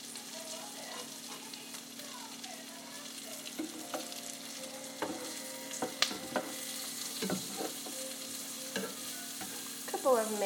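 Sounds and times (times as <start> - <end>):
food sautéing in a pan over low heat: 0.0 - 10.4.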